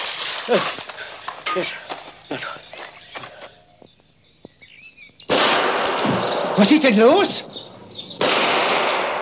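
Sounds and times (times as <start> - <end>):
speech: 0.5 - 2.7, 6.6 - 7.5
gunshots fired in the forest: 5.3 - 7.2, 8.2 - 9.2.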